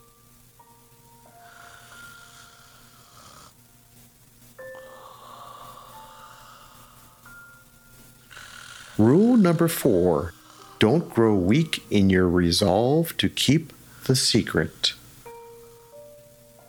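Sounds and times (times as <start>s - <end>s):
soft steady snoring with a faint whistling wheezy tone: 1.3s - 3.6s, 4.6s - 11.6s
speech: 9.0s - 15.0s.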